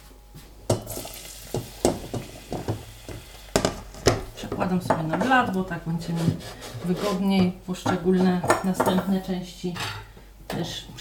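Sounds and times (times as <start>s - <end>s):
chopped onion sizzling in melted fat in a pot: 0.8s - 4.4s
speech: 4.6s - 10.0s, 10.6s - 10.9s
utensil knocking and scraping against a pot while stirring: 6.0s - 7.4s.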